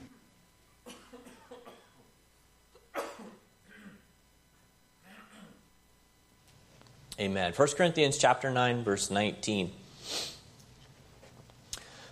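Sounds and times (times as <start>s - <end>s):
person coughing: 0.8s - 2.1s, 2.8s - 4.1s, 5.0s - 5.6s
speech: 7.2s - 10.3s.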